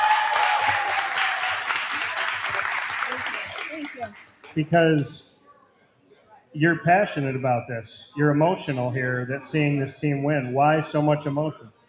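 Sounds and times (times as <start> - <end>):
crowd clapping: 0.0 - 4.7
speech: 4.0 - 5.3, 6.6 - 11.8.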